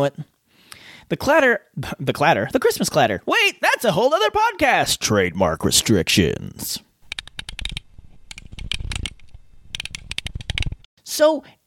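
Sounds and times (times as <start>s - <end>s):
speech: 0.0s - 0.3s, 1.1s - 6.9s, 11.1s - 11.6s
fingers typing on a computer keyboard: 7.1s - 10.8s.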